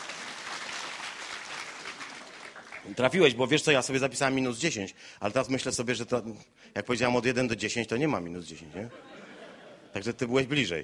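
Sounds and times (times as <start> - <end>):
people clapping: 0.0 - 3.4
speech: 2.8 - 9.2, 10.0 - 10.8
laughter: 8.8 - 10.2.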